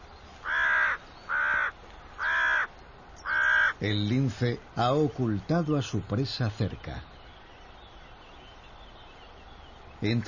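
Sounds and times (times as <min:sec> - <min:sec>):
crow cawing: 0:00.4 - 0:03.8
speech: 0:03.8 - 0:07.1, 0:10.0 - 0:10.2.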